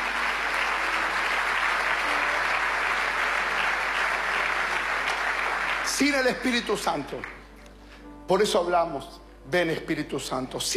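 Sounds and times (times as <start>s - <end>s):
church congregation applauding: 0.0s - 7.5s
speech: 6.0s - 7.4s, 8.3s - 10.7s.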